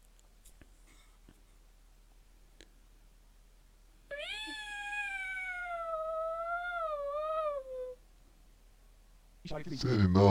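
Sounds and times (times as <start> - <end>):
long drawn-out cat meow: 4.1 - 8.0
speech: 9.5 - 10.2.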